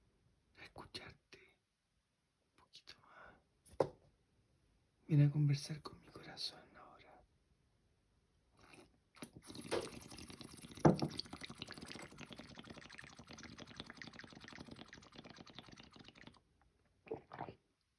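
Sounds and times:
speech: 0:05.1 - 0:06.6
person drinking water: 0:08.6 - 0:16.4, 0:17.0 - 0:17.6.

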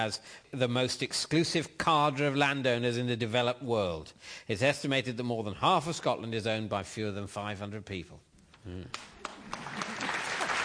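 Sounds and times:
speech: 0:00.0 - 0:09.9
audience applause: 0:09.2 - 0:10.6.

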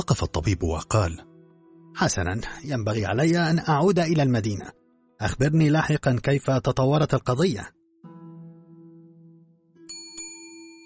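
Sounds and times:
speech: 0:00.0 - 0:01.3, 0:02.0 - 0:07.8
hand bell rung to summon a servant: 0:09.9 - 0:10.8.

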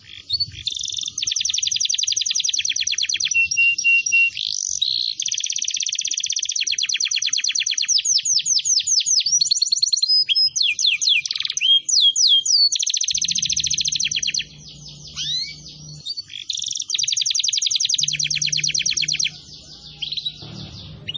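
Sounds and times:
canary singing: 0:00.0 - 0:21.1
low hum: 0:13.3 - 0:16.0, 0:18.0 - 0:21.1.

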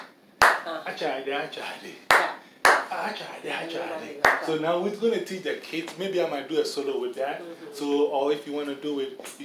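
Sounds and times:
hand claps while teaching a clapping song to children: 0:00.0 - 0:00.7, 0:02.1 - 0:02.9, 0:04.2 - 0:04.5
speech: 0:00.8 - 0:09.4.

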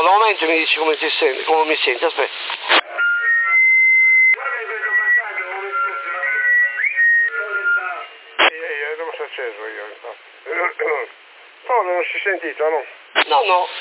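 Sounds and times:
narrow-band voices talking over CB radio: 0:00.0 - 0:11.2, 0:13.2 - 0:13.7
speech: 0:00.3 - 0:02.8, 0:09.4 - 0:13.7
person whistling over a CB radio channel near Sassari: 0:02.9 - 0:08.1.

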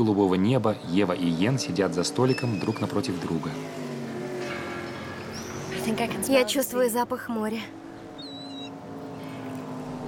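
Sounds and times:
speech: 0:00.0 - 0:03.8, 0:05.9 - 0:07.8
motorboat engines racing on a bay: 0:00.0 - 0:10.0
high whistling chirp: 0:02.2 - 0:03.0, 0:05.2 - 0:06.0, 0:08.0 - 0:09.3.

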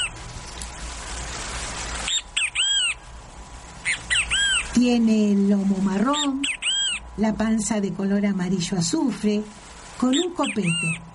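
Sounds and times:
great kiskadee calling: 0:00.0 - 0:00.2, 0:02.0 - 0:03.1, 0:03.8 - 0:04.8, 0:06.1 - 0:07.2, 0:10.1 - 0:11.1
speech: 0:04.8 - 0:06.6, 0:07.2 - 0:11.1.

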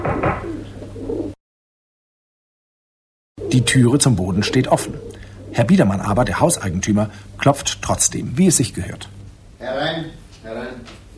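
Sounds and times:
white dove cooing while being fed: 0:00.0 - 0:01.4, 0:03.4 - 0:07.4
speech: 0:03.5 - 0:10.6.

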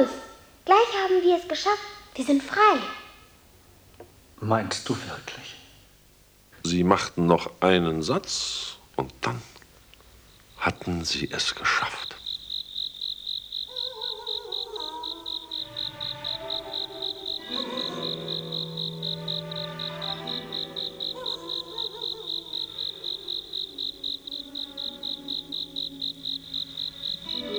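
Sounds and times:
speech: 0:00.0 - 0:03.0, 0:04.4 - 0:05.6, 0:06.6 - 0:09.5, 0:10.6 - 0:12.2
cricket chirping on a warm summer night: 0:00.0 - 0:27.5
soft melodic music: 0:15.4 - 0:27.5.

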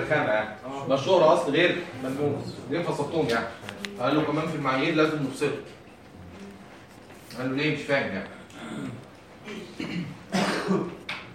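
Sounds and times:
speech: 0:00.0 - 0:05.8, 0:07.3 - 0:10.9
person coughing during an accounting course class: 0:08.5 - 0:11.0.

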